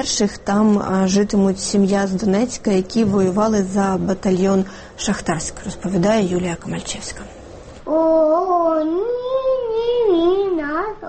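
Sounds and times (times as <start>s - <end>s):
speech: 0.0s - 9.2s
young girl singing an unaccompanied lullaby: 7.9s - 11.0s.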